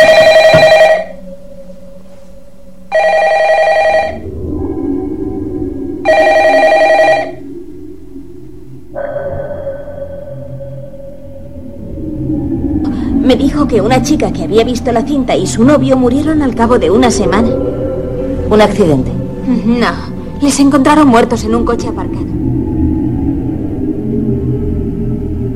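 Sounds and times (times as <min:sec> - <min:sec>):
telephone bell ringing: 0:00.0 - 0:01.2, 0:02.9 - 0:04.2, 0:06.1 - 0:07.4
lower steady tone droning: 0:00.0 - 0:25.5
speech: 0:13.7 - 0:17.8, 0:18.5 - 0:22.3.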